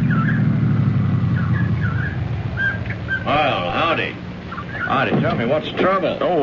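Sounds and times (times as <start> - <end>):
high squeaky chirps: 0.0 - 3.5, 4.4 - 5.1
police car engine rumbling: 0.0 - 6.4
speech: 4.9 - 6.4.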